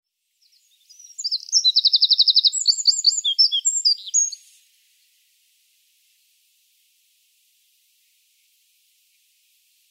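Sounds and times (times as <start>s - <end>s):
Eurasian wren Troglodytes troglodytes singing: 0.4s - 4.6s.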